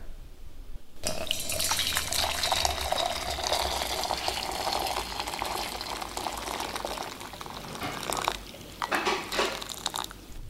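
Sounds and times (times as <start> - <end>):
hot water poured into flour: 1.0 - 10.2.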